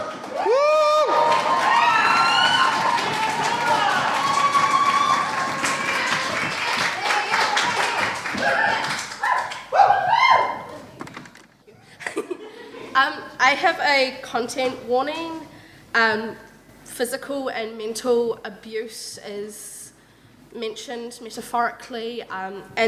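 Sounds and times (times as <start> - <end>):
high whoops and cheers: 0.0 - 6.8, 7.6 - 10.8
crowd applauding at a poetry slam: 0.0 - 10.5
speech: 13.8 - 15.4, 16.0 - 19.7, 20.5 - 22.8.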